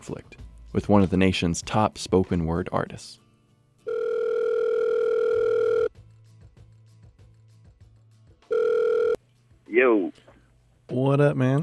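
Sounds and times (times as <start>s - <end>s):
speech: 0.0s - 3.2s, 10.9s - 11.6s
long steady electronic telephone line tone: 3.9s - 5.9s, 8.5s - 9.2s.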